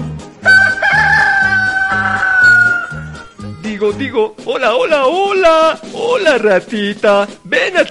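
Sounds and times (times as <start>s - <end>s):
rooster crowing: 0.4s - 3.2s
speech: 3.8s - 7.8s.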